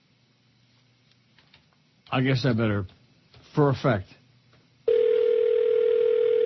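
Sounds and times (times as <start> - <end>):
speech: 2.1 - 3.0, 3.6 - 4.2
office telephone ringing for an incoming call: 4.9 - 6.4.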